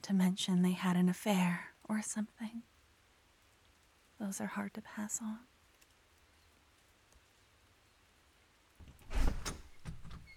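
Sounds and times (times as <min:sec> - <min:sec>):
speech: 0:00.0 - 0:02.7, 0:04.2 - 0:05.5
door sliding open with a rumbling scraping rush: 0:08.8 - 0:10.3.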